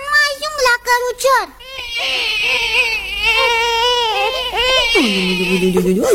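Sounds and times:
speech: 1.0s - 6.1s
baby crying at bedtime: 1.6s - 6.1s.

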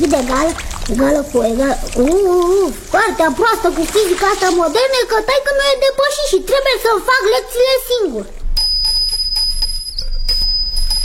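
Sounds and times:
speech: 0.0s - 8.4s
small bell ringing: 8.6s - 11.0s.

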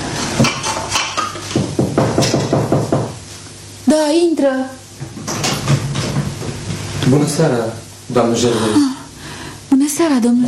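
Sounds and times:
dishes clattering and clinking while being washed: 0.2s - 3.2s, 5.0s - 6.9s
speech: 4.1s - 4.8s, 7.1s - 8.9s, 10.0s - 10.4s.

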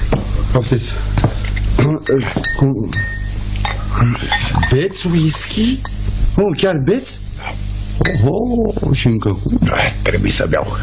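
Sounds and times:
low steady hum: 0.0s - 10.8s
speech: 0.6s - 3.2s, 4.0s - 10.8s
glass bottle clinking against a glass as drink is poured: 1.4s - 6.0s, 8.0s - 8.3s.

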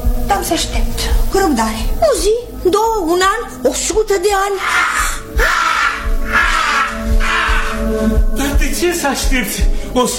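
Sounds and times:
speech: 0.4s - 5.6s, 8.0s - 10.1s
raven cawing: 4.5s - 8.2s.

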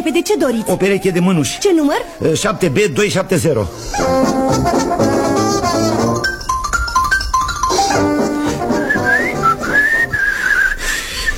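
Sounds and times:
speech: 0.0s - 5.5s
busy background of music-like harmonics: 3.8s - 10.3s
person whistling a bright wandering melody: 7.7s - 11.3s.

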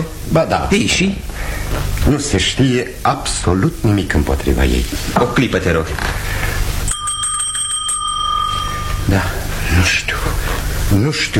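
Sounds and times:
speech: 0.0s - 6.4s, 9.1s - 11.3s
hand bell rung to summon a servant: 6.9s - 9.4s.

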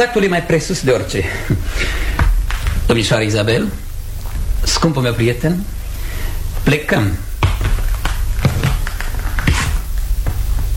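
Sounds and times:
speech: 0.0s - 2.2s, 2.9s - 3.8s, 4.6s - 5.8s, 6.6s - 7.3s
footsteps on a hard floor walking to the door: 1.5s - 2.9s, 7.4s - 10.7s.

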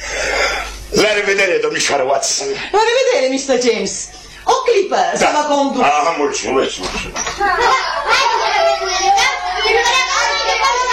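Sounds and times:
speech: 1.0s - 8.3s
children playing noisily in the street: 7.2s - 10.9s.

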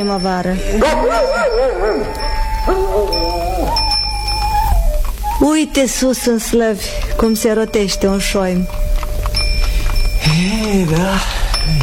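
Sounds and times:
speech: 0.0s - 3.9s, 5.4s - 9.1s, 10.3s - 11.8s
steady ringing tone: 0.0s - 11.8s
dog yipping and barking in high wavering cries: 0.8s - 5.1s.

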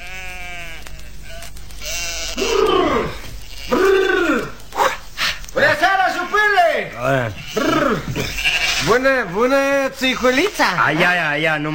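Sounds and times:
flock of sheep bleating returning from grazing: 0.0s - 4.6s, 6.0s - 9.5s
speech: 7.1s - 11.7s.

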